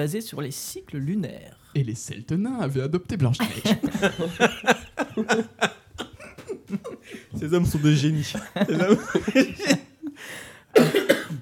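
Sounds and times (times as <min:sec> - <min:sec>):
speech: 0:00.0 - 0:05.8, 0:07.4 - 0:11.0
laughter: 0:03.4 - 0:10.2
person coughing: 0:10.8 - 0:11.4.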